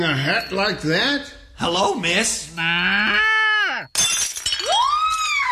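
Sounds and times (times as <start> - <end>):
speech: 0.0 - 3.4
china figurine of a girl milking a cow shattering: 3.9 - 5.4.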